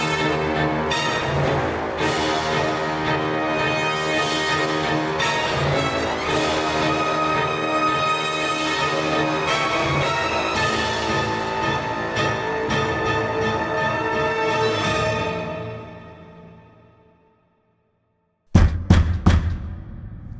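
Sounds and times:
music: 0.0 - 20.3
knocking on the door of a ruin: 18.5 - 20.1.

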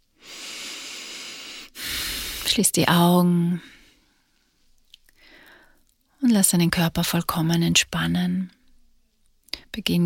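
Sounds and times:
slow breath in through the nose and out through the mouth during yoga relaxation: 0.0 - 2.5, 3.6 - 5.9
speech: 2.5 - 3.8, 6.3 - 8.6, 9.8 - 10.0.

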